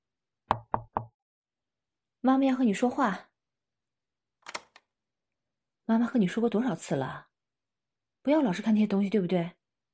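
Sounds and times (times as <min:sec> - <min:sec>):
mother knocking on her son's door: 0:00.5 - 0:01.2
speech: 0:02.2 - 0:03.3, 0:05.9 - 0:07.3, 0:08.2 - 0:09.6.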